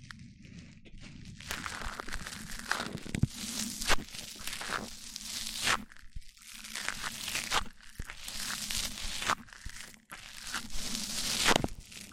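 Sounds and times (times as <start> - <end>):
crinkly scratchy rubbing against the microphone: 0.0 - 12.1.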